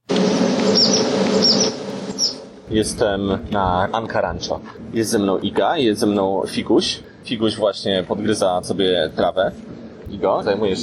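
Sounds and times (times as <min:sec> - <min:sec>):
steady droning buzz of insects on a horse ranch: 0:00.0 - 0:10.8
bird chirping short high tweets on a horse ranch: 0:00.1 - 0:02.6
speech: 0:02.7 - 0:10.8.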